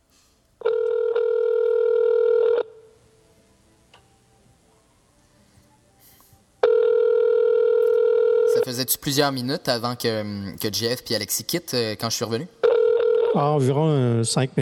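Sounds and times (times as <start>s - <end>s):
telephone ringing: 0.6s - 2.9s, 6.6s - 8.9s, 12.6s - 13.5s
speech: 8.8s - 12.6s, 13.3s - 14.6s.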